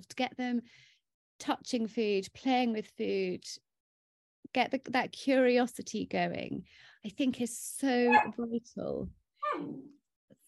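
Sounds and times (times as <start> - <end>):
speech: 0.0 - 3.6, 4.5 - 10.0
dog whimpering: 8.1 - 8.3, 9.4 - 9.9.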